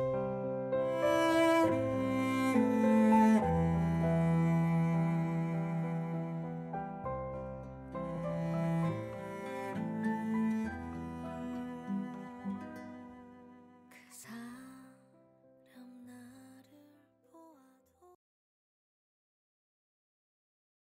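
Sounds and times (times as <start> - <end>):
slow Korean pop ballad remake with classical string instruments: 0.2 - 13.5.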